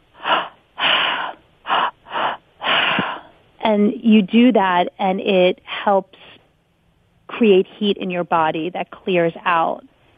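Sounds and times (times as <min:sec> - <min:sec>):
person mouth breathing in a breathing exercise: 0:00.1 - 0:03.4
speech: 0:03.7 - 0:06.2, 0:07.4 - 0:09.9.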